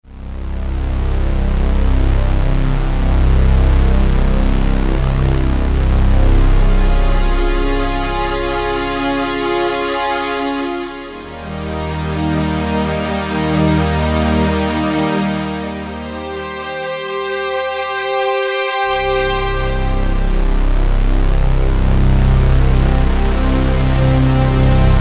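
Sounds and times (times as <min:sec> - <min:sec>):
synthesizer pad: 0:00.1 - 0:24.9.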